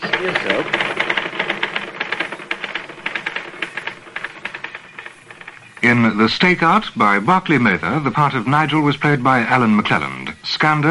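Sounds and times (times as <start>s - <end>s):
mechanical typewriter typing: 0.0s - 7.3s
speech: 0.2s - 1.0s, 5.8s - 10.8s.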